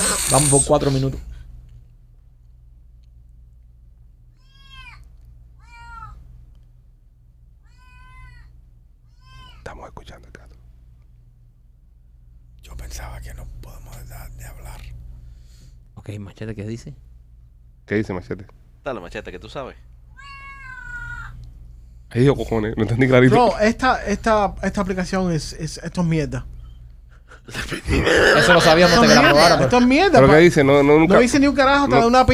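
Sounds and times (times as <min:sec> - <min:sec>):
breathy hissing noise: 0:00.0 - 0:01.0
steady low hum: 0:00.0 - 0:32.3
speech: 0:00.3 - 0:01.3, 0:16.4 - 0:17.1, 0:17.9 - 0:20.3, 0:22.1 - 0:26.5, 0:27.4 - 0:32.3
cat meowing: 0:04.3 - 0:06.2, 0:07.6 - 0:09.7, 0:20.1 - 0:21.4
laughter: 0:27.1 - 0:30.1.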